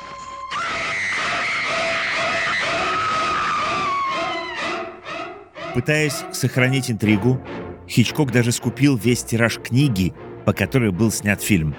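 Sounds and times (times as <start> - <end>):
woman screaming in terror and breaking into gasping cries: 0.2 - 5.7
speech: 5.8 - 11.7.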